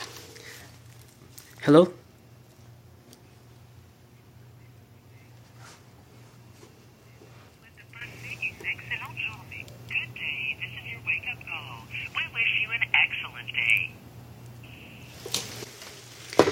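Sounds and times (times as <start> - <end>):
steady low electrical hum: 0.0 - 16.5
speech: 1.6 - 2.0
tinny recorded voice of automated wake-up call through a telephone: 7.6 - 14.0.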